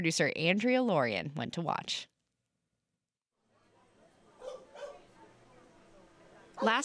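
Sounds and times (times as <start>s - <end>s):
speech: 0.0s - 2.1s, 6.6s - 6.8s
crowd chatter at a gathering of dogs and their owners: 3.5s - 6.8s
short sharp dog barks: 4.4s - 5.1s.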